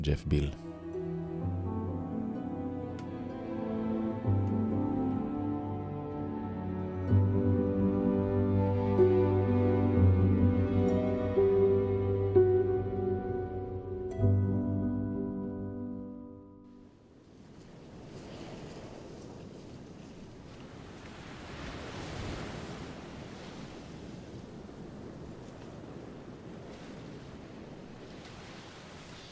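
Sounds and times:
speech: 0.0 - 0.7
slow brooding orchestral score for a TV series: 0.0 - 16.7.

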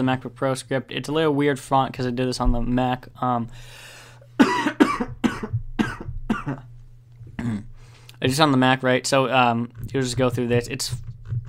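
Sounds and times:
speech: 0.0 - 4.5, 8.2 - 11.0
faint low hum: 0.0 - 11.4
person coughing harshly: 4.4 - 6.7, 7.4 - 7.8.

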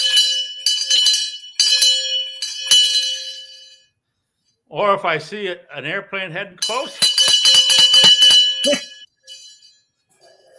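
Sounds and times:
large hand bell ringing: 0.0 - 3.8, 6.6 - 9.8
speech: 4.8 - 7.1, 8.6 - 8.9.

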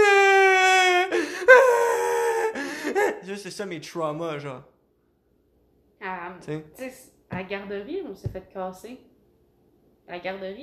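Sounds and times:
person imitating crying with whimpering sobs: 0.0 - 3.3
speech: 3.2 - 4.7, 6.3 - 9.1, 10.1 - 10.6.

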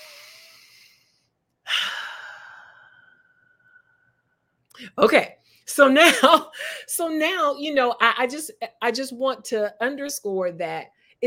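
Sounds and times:
deep breath: 0.0 - 4.2
speech: 4.8 - 11.2.

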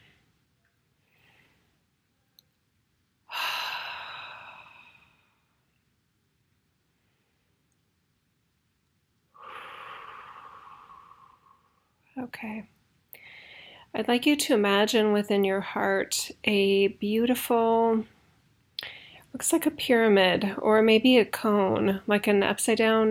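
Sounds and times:
deep breath: 1.0 - 1.8, 3.3 - 5.6, 9.3 - 12.0, 13.2 - 13.9, 18.8 - 19.3
speech: 12.2 - 12.8, 13.9 - 18.2, 19.3 - 23.0.

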